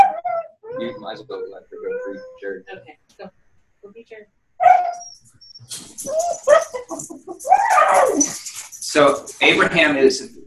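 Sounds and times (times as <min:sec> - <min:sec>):
dog barking and yelping: 0:00.0 - 0:02.6, 0:04.6 - 0:09.3
speech: 0:00.8 - 0:10.4.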